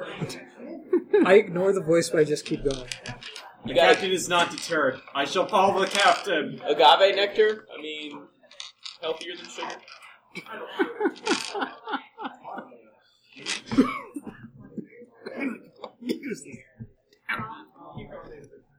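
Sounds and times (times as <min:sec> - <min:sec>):
laughter: 0:00.0 - 0:07.6, 0:09.1 - 0:18.4
speech: 0:00.2 - 0:00.5, 0:01.2 - 0:08.3, 0:09.0 - 0:12.4
throat clearing: 0:13.6 - 0:18.4
harsh coughs: 0:13.7 - 0:16.9.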